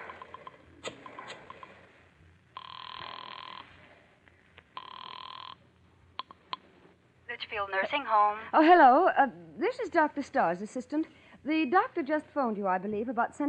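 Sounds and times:
long buzzing telephone rings: 2.6s - 3.8s, 4.8s - 5.6s
speech: 7.4s - 13.4s.

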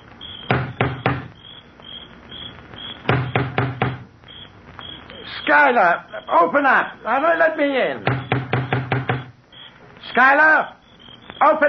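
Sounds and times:
crickets chirping: 0.0s - 11.6s
huge door knocker banging on the front door of an old mansion: 0.5s - 1.3s, 3.1s - 4.1s, 8.0s - 9.3s
speech: 5.5s - 8.2s, 10.2s - 10.8s, 11.4s - 11.6s.

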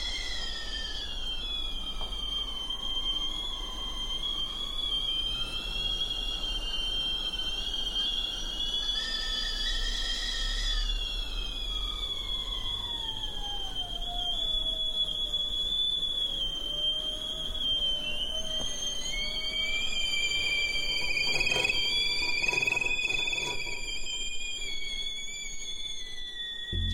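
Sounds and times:
several shrill whistling teapots sliding and bending in pitch: 0.0s - 26.9s.

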